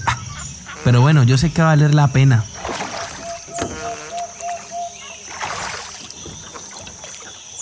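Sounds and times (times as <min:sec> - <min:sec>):
birdlike chirps in faint outdoor ambience: 0:00.0 - 0:07.6
oars of a rowing boat without a motor rowing through water on a lagoon: 0:00.0 - 0:07.6
speech: 0:00.8 - 0:02.5
water splashes and trickles from rowing on a lagoon: 0:02.2 - 0:07.6
rowing boat creaking: 0:02.5 - 0:07.5.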